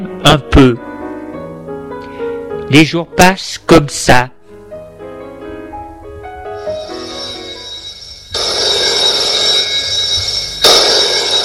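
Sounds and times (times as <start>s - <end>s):
speech: 0.2s - 0.9s, 2.7s - 4.4s
telephone bell ringing: 6.6s - 11.4s.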